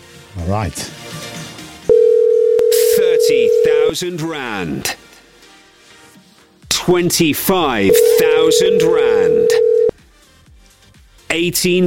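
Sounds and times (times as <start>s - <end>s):
speech: 0.4s - 1.0s, 3.2s - 5.0s, 6.9s - 9.7s, 11.3s - 11.8s
telephone dial tone of an outgoing call: 1.9s - 3.9s, 7.9s - 9.9s.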